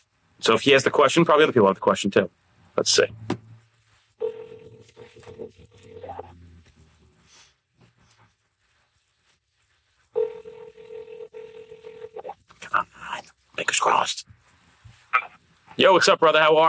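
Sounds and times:
speech: 0.4s - 3.4s, 12.7s - 14.3s, 15.8s - 16.6s
phone line ringing out with steady electronic ring tone: 4.2s - 6.3s, 10.2s - 12.3s.

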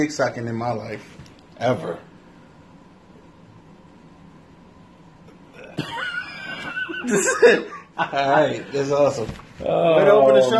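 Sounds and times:
speech: 0.0s - 2.1s, 7.0s - 10.5s
quiet noise: 0.0s - 10.5s
person coughing: 5.5s - 6.1s.

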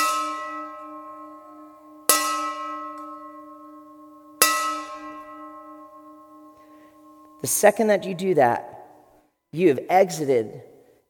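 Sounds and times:
metal bell ringing: 0.0s - 7.6s
speech: 7.4s - 8.8s, 9.5s - 10.7s.

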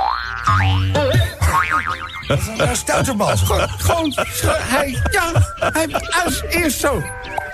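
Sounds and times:
cartoonish springy boing sound effects: 0.0s - 2.4s
laughter: 0.8s - 7.1s
speech: 1.7s - 7.4s.

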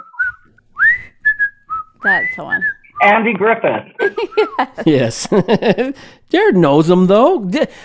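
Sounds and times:
person whistling an old black-and-white TV theme tune: 0.0s - 3.1s
speech: 2.0s - 7.8s
laughter: 3.0s - 6.0s.

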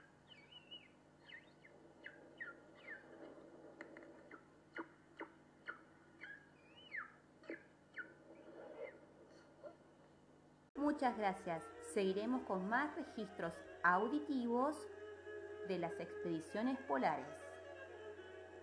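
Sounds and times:
Weddell seal pup chirping calls: 0.2s - 9.8s
speech: 10.8s - 15.0s, 15.7s - 17.4s.

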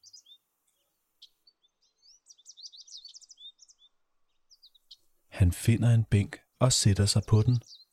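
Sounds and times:
birds chirping and twittering outdoors: 0.0s - 7.9s
speech: 5.4s - 7.8s.

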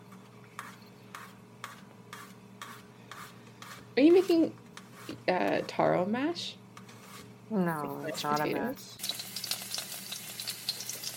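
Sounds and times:
speech: 4.0s - 4.6s, 5.3s - 6.6s, 7.5s - 9.1s
oil sizzling in a pan: 9.0s - 11.1s.

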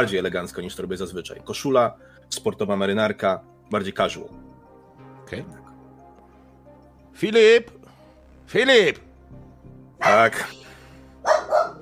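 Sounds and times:
speech: 0.0s - 4.5s, 5.3s - 5.6s, 7.2s - 7.8s, 8.5s - 9.1s, 10.0s - 10.6s
dog barking through a wall: 11.2s - 11.8s.

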